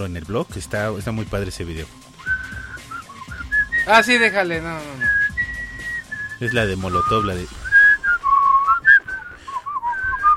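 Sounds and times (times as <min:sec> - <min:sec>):
speech: 0:00.0 - 0:02.1, 0:03.9 - 0:05.2, 0:06.4 - 0:07.6
person whistling a tune through a mask: 0:02.2 - 0:04.1, 0:04.8 - 0:10.3.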